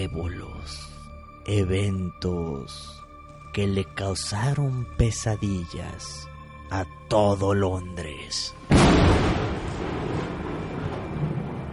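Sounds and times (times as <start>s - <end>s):
speech: 0.0s - 0.9s, 1.5s - 3.0s, 3.6s - 9.8s
sharp loud thunderclap: 8.7s - 11.7s.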